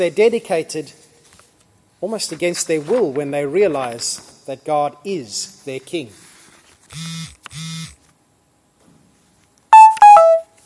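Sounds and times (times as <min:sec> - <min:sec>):
speech: 0:00.0 - 0:01.0, 0:02.0 - 0:06.2, 0:06.9 - 0:07.7
phone bright higher beeping notes: 0:09.7 - 0:10.5
phone buzzy electronic tones: 0:09.8 - 0:10.5.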